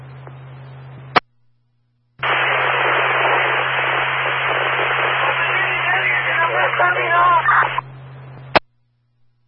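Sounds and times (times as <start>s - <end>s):
low steady hum: 0.0s - 9.4s
harsh garbled radio static: 2.2s - 8.6s.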